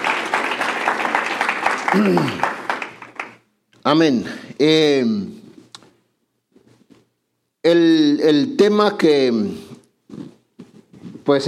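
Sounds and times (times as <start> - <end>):
audience applause: 0.0 - 3.4
speech: 1.9 - 2.5, 3.9 - 5.4, 7.6 - 9.6, 11.3 - 11.4.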